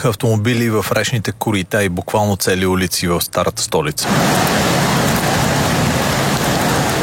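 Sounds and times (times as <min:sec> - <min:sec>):
speech: 0:00.0 - 0:04.8
heavy rain downpour pounding surfaces: 0:04.0 - 0:07.0.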